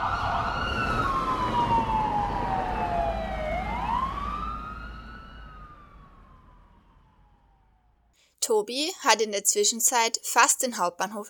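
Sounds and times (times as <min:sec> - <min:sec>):
low traffic rumble: 0:00.0 - 0:07.8
police siren wailing: 0:00.0 - 0:08.1
speech: 0:08.5 - 0:11.2.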